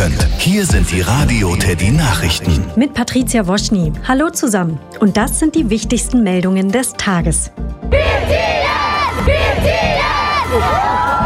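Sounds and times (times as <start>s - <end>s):
speech: 0.0s - 8.6s
high-pitched screams and shouts of concert fans: 7.9s - 11.2s
stadium crowd of concert fans cheering at a pop band show in a football arena: 7.9s - 11.2s.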